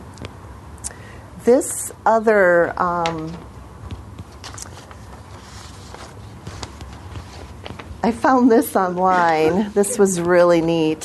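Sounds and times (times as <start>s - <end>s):
low steady hum: 0.0s - 11.0s
speech: 1.5s - 3.5s, 8.0s - 11.0s
sheets of paper being shuffled and handled: 4.3s - 10.5s.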